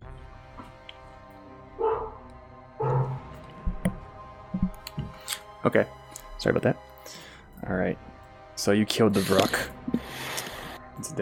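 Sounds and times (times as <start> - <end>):
dog barking and yelping: 1.8 - 2.2, 2.8 - 3.2
speech: 5.6 - 10.2, 11.0 - 11.2.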